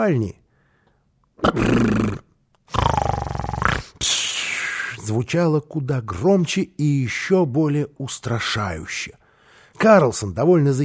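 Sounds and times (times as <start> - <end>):
speech: 0.0 - 0.4, 1.4 - 2.8, 5.1 - 9.2, 9.8 - 10.8
uncle snoring loudly in a bedroom: 1.4 - 4.0.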